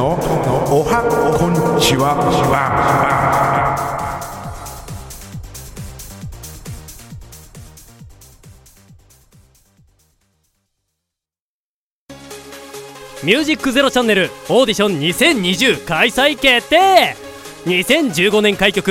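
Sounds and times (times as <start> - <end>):
speech: 0.0 - 3.9, 13.2 - 18.8
loud spoken call with heavy echo effect: 0.0 - 5.2.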